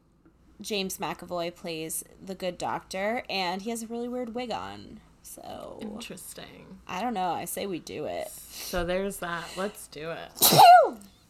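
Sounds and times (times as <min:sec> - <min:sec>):
speech: 0:00.6 - 0:11.1
sneeze: 0:10.4 - 0:11.1.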